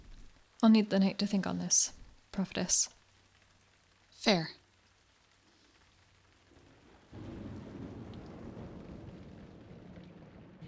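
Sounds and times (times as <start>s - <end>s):
steady rain pouring down: 0.0s - 10.6s
speech: 0.6s - 3.0s, 4.2s - 4.6s
deep rumble of thunder: 6.5s - 10.6s.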